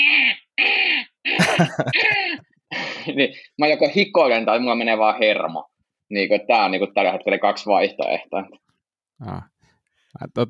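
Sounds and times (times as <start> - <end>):
voice imitating seagull squawking: 0.0 - 2.4
laughter: 1.4 - 2.5
speech: 1.6 - 2.2, 3.2 - 8.6, 9.2 - 9.5, 10.2 - 10.4.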